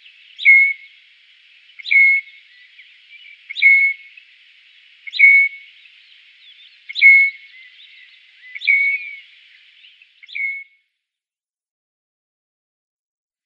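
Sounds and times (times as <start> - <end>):
Southern Grey Shrike song: 0.0 - 0.9, 1.8 - 4.2, 5.0 - 5.7, 6.4 - 9.3
background hiss: 0.0 - 10.8.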